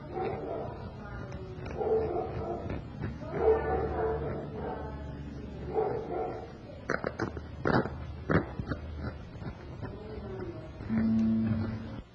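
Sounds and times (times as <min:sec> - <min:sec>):
murmur of voices: 0:00.0 - 0:12.1
room noise: 0:00.0 - 0:12.1
dog barking: 0:00.1 - 0:00.9, 0:01.7 - 0:04.9, 0:05.7 - 0:06.5
short whine-like tone: 0:10.9 - 0:12.0.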